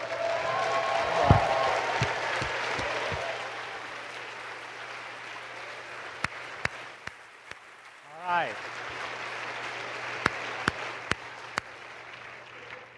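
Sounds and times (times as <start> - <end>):
room full of people applauding: 0.0 - 12.9
sharp louder individual claps: 1.1 - 3.4, 6.2 - 7.7, 10.1 - 12.8.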